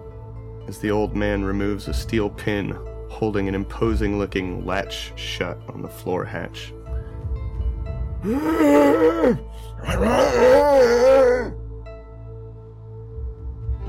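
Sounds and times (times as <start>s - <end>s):
speech: 0.7s - 6.8s, 8.2s - 11.6s
eerie moaning from a dark pit beneath a floor hatch: 8.2s - 11.6s.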